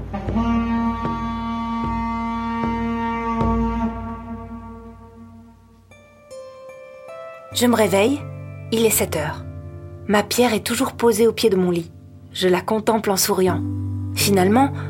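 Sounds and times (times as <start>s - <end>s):
village foghorn blasting: 0.0s - 6.4s
speech: 7.6s - 9.5s, 10.1s - 14.8s.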